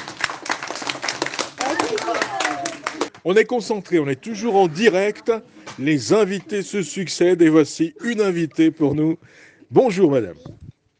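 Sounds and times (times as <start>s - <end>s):
audience applause: 0.0s - 3.1s
speech: 3.2s - 10.6s.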